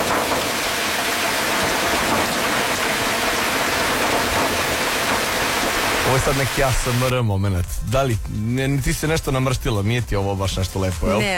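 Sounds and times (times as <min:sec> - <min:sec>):
rain drumming on a window or roof: 0:00.0 - 0:07.1
speech: 0:06.2 - 0:11.3.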